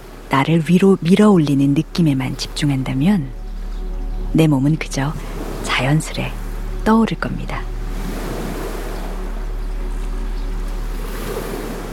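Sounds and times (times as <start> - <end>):
gentle ocean waves: 0.0 - 11.9
speech: 0.3 - 3.4, 4.3 - 7.7.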